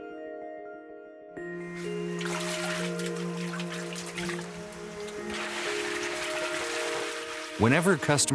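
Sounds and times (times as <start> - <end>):
forest stream water flowing in the Chengbai Mountains: 1.6 - 8.3
sustained musical tones: 1.6 - 8.3
speech: 7.6 - 8.3.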